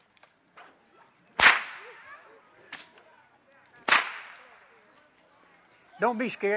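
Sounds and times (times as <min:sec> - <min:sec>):
long whip cracking outdoors: 0:01.4 - 0:02.0, 0:03.8 - 0:04.5
speech: 0:06.0 - 0:06.5.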